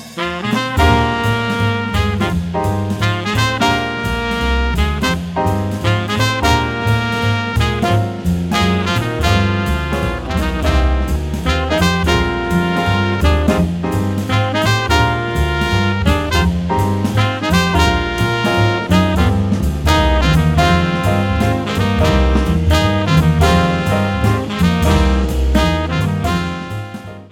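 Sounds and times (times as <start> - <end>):
walking bass line: 0.3 - 27.2.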